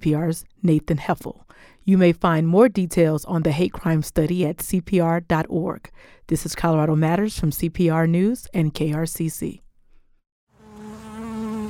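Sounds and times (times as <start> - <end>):
speech: 0.0 - 9.6
bees buzzing: 10.5 - 11.6.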